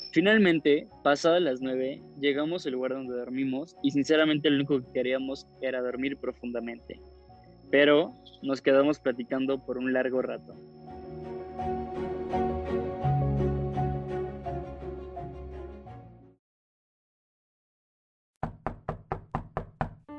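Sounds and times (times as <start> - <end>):
speech: 0.2 - 7.1, 7.7 - 10.8
musical passage: 10.9 - 16.2
loud knocks on a door: 18.4 - 20.0.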